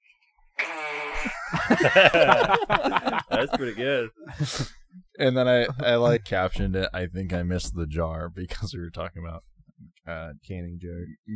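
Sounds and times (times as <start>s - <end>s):
fart sound played from a video: 0.6s - 1.4s
laughter: 0.6s - 6.5s
speech: 1.2s - 9.5s, 10.1s - 11.3s.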